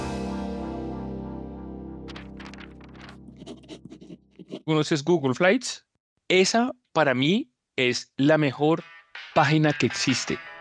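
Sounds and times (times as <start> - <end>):
pencil scratching across paper in short strokes: 3.0 - 4.8
speech: 4.7 - 10.5.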